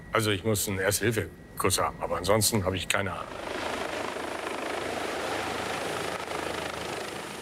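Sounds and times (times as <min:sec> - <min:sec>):
rescue helicopter flying: 0:00.0 - 0:07.4
speech: 0:00.2 - 0:03.7.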